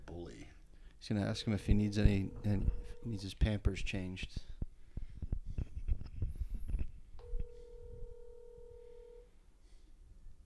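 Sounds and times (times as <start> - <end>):
speech: 1.0 - 4.5
rumbling and handling noise: 1.4 - 8.2
phone ringback tone on an outgoing call: 1.6 - 3.2, 7.2 - 9.3.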